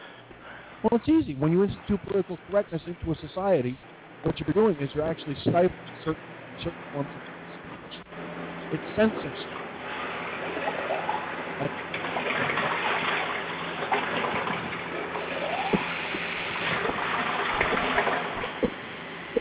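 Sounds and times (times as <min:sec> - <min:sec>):
speech: 0:00.8 - 0:07.3, 0:08.7 - 0:09.5
water running from a tap filling a dog's water bowl: 0:10.6 - 0:18.7.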